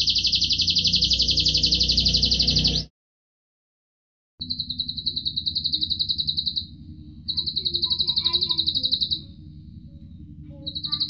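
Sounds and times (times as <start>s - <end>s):
Atlantic canary singing Cililin-style trills: 0.0s - 2.9s, 4.4s - 11.0s
low background hum: 0.0s - 2.9s, 4.4s - 11.0s.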